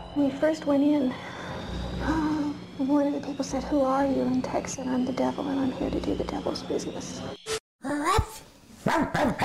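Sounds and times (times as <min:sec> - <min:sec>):
speech: 0:00.1 - 0:01.3, 0:02.0 - 0:07.4
person's voice imitating a dog barking: 0:08.9 - 0:09.4.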